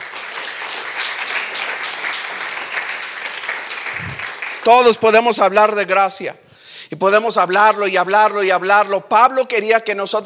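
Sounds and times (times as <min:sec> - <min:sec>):
worship audience applauding: 0:00.0 - 0:05.8
speech: 0:04.7 - 0:10.2.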